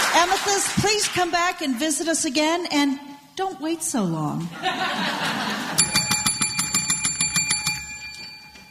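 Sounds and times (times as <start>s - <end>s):
speech: 0.2s - 5.9s
laughter: 4.5s - 5.9s
school bell ringing in bright metallic strikes: 5.7s - 8.7s.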